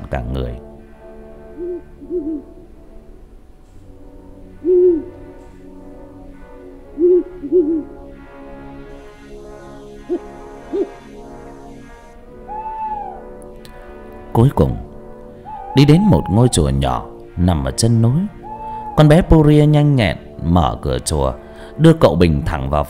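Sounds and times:
speech: 0:00.1 - 0:00.7, 0:14.4 - 0:14.8, 0:15.8 - 0:18.4, 0:19.0 - 0:22.8
owl hooting at night in a dark forest: 0:01.4 - 0:02.7, 0:04.4 - 0:05.6, 0:06.8 - 0:08.1, 0:09.9 - 0:11.2, 0:12.4 - 0:13.4, 0:15.3 - 0:17.1, 0:18.3 - 0:19.3.

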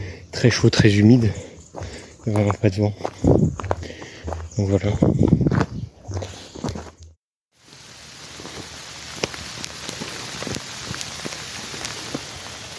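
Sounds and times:
speech: 0:00.4 - 0:01.5, 0:02.2 - 0:03.6, 0:04.6 - 0:05.2
tropical rain falling during a walk in hot humid windless weather in Mauritius: 0:07.6 - 0:12.7.

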